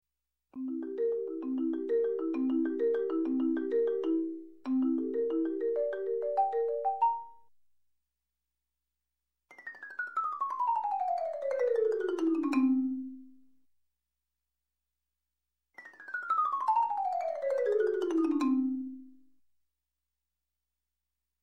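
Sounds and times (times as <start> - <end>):
marimba arpeggio: 0.6 - 7.4, 10.5 - 13.1, 16.3 - 19.0.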